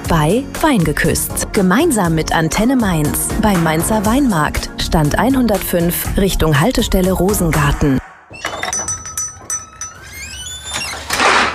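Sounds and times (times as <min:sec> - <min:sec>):
speech: 0:00.1 - 0:08.0
kitchen drawer runners scraping and squealing: 0:08.3 - 0:11.5
metal utensils clinking inside a kitchen drawer: 0:08.5 - 0:10.1.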